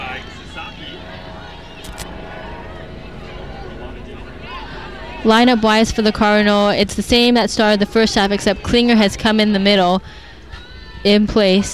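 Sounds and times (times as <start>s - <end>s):
faint murmuring voices at a soccer match: 0.0s - 11.7s
medical helicopter passing low overhead during a soccer match: 0.0s - 11.7s
speech: 5.2s - 10.2s, 11.0s - 11.7s.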